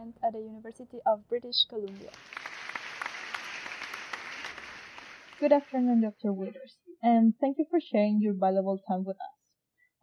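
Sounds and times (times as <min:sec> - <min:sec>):
speech: 0:00.1 - 0:02.6, 0:05.4 - 0:09.4
audience applause after the introduction of a university chemistry professor at a talk: 0:02.0 - 0:06.1.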